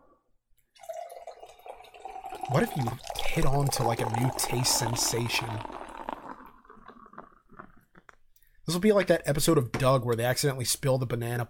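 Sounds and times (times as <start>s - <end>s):
seltzer water pouring into red wine in a glass: 0.7s - 8.2s
fizzy hiss of seltzer water: 2.0s - 7.8s
speech: 2.5s - 5.8s, 8.7s - 11.4s.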